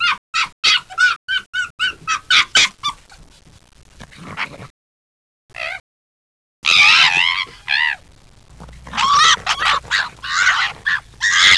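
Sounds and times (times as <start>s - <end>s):
foxes squabbling: 0.0s - 3.4s, 5.5s - 5.8s, 6.6s - 11.5s.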